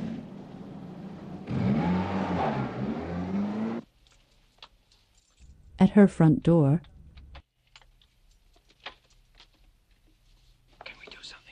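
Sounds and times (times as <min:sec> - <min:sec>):
car engine restarting and revving: 0:00.0 - 0:03.9
speech: 0:05.9 - 0:06.9.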